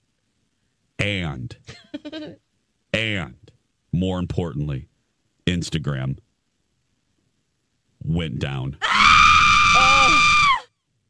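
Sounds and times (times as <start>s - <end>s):
speech: 1.0s - 4.9s, 5.5s - 6.2s, 8.0s - 9.2s
woman screaming: 8.8s - 10.7s.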